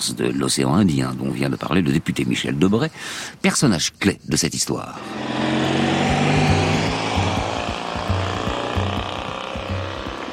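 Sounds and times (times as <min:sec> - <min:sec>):
speech: 0:00.0 - 0:05.6
Citroën 2CV car engine driving round bends on a winding road on Réunion: 0:05.0 - 0:10.3
ticking knocks: 0:05.1 - 0:10.3.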